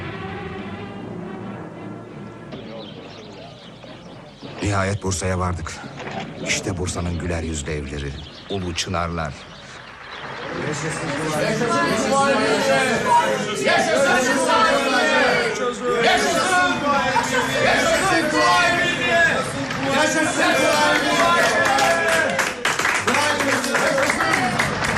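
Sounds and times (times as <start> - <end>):
speech: 4.7 - 9.5, 10.6 - 14.8, 15.7 - 22.3
large crowd cheering along roadsides in Bursa: 7.6 - 24.9.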